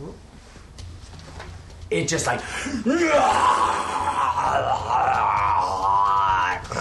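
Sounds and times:
speech: 1.9 - 3.8
person vocally imitating a creature screaming after being hit by a lightning bolt: 2.9 - 6.8.

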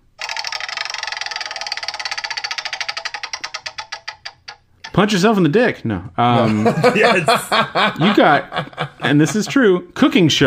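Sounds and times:
prize wheel being spun with ratcheting clicks: 0.2 - 4.6
speech: 5.0 - 10.4
laughter: 6.4 - 9.8.

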